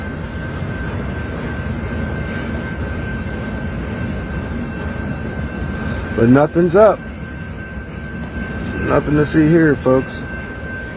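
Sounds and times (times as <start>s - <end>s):
faint high whine from the train: 0.0s - 10.9s
long freight train rolling past: 0.0s - 10.9s
speech: 6.2s - 7.1s, 8.9s - 10.3s.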